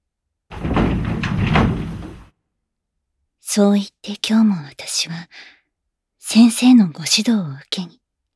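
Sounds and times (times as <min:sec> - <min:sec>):
classroom sliding door rumbling and rattling open: 0:00.5 - 0:02.3
speech: 0:03.6 - 0:05.6, 0:06.2 - 0:08.3.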